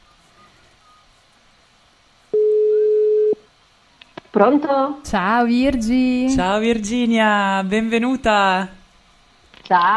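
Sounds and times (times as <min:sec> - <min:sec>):
ringback tone of an outgoing telephone call: 0:02.3 - 0:03.4
speech: 0:04.4 - 0:08.8, 0:09.7 - 0:09.9.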